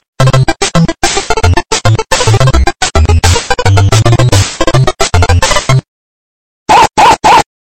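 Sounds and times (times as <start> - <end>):
electronic SMS ringtone: 0.2 - 5.8.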